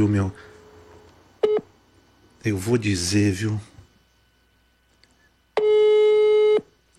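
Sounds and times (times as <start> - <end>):
speech: 0.0 - 0.5, 2.4 - 3.7
telephone ringback tone on a call: 5.6 - 6.7.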